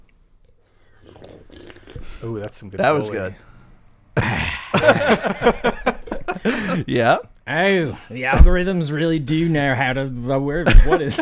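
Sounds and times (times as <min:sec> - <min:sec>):
person slurping a sip of coffee: 0:00.7 - 0:02.3
speech: 0:02.2 - 0:03.5, 0:04.2 - 0:05.8, 0:06.4 - 0:11.2
laughter: 0:04.2 - 0:07.0, 0:10.7 - 0:11.2.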